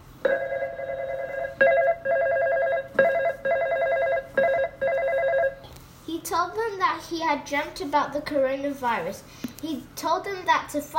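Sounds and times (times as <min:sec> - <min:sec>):
telephone ringing with electronic trill: 0:00.2 - 0:05.6
speech: 0:07.2 - 0:10.9.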